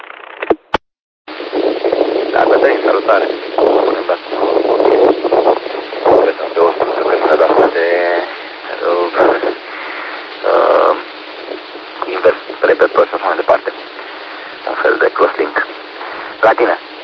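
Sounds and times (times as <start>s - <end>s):
rushing wind noise buffeting the microphone: 1.3s - 16.4s
voice talking over a tinny band-limited radio transmission: 2.3s - 5.2s, 6.0s - 11.1s, 12.0s - 16.8s
speech: 2.4s - 5.1s, 12.7s - 13.6s, 16.4s - 16.9s.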